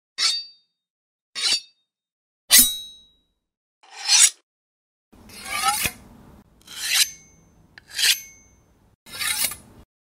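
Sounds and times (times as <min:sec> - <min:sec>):
blade being sharpened: 0:00.2 - 0:00.6, 0:01.4 - 0:01.8, 0:02.5 - 0:03.0, 0:03.8 - 0:04.4, 0:05.3 - 0:06.0, 0:06.6 - 0:09.7.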